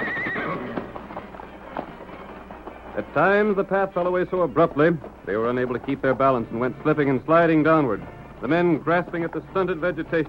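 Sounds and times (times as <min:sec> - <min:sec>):
horse whinnying while led down a steep canyon descent: 0:00.0 - 0:01.2
horse hooves clopping on hard ground: 0:00.0 - 0:10.2
speech: 0:03.0 - 0:10.2.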